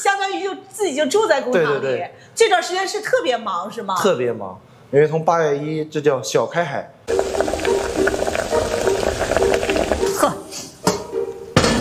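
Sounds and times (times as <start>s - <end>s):
speech: 0.5s - 7.5s
cabbage crackling and popping as it scorches at the pot bottom: 7.1s - 10.4s
swimming crabs steaming in a pot over cabbage in a kitchen: 7.1s - 10.8s.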